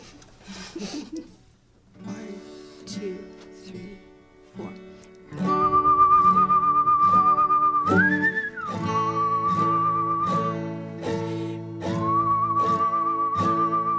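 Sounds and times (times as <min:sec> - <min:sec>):
speech: 0:00.8 - 0:01.4
person whistling a clear wavering melody: 0:05.4 - 0:13.9.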